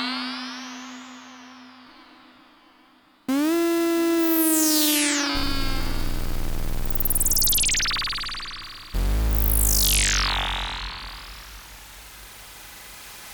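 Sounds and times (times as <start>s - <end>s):
Sequential Circuits Six-Trak synthesizer effects: 3.3s - 13.3s.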